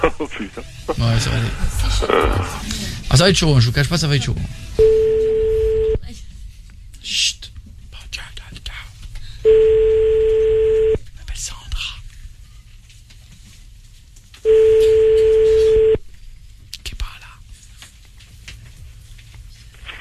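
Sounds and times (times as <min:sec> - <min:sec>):
speech: 0:00.0 - 0:04.8, 0:07.0 - 0:07.5
ringback tone beeps of an outgoing telephone call: 0:04.8 - 0:06.0, 0:09.5 - 0:11.0, 0:14.5 - 0:16.0.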